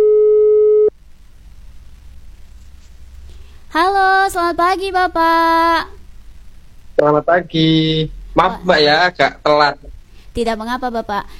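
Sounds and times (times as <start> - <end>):
telephone tone while a call is trying to connect: 0.0 - 0.9
speech: 3.8 - 6.0, 7.0 - 11.3.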